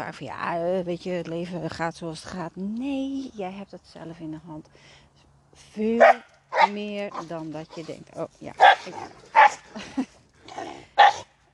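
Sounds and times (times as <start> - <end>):
speech: 0.0 - 5.0, 5.7 - 9.3
small dog barking: 6.0 - 6.8, 8.6 - 9.6, 11.0 - 11.3
laughter: 9.7 - 10.2.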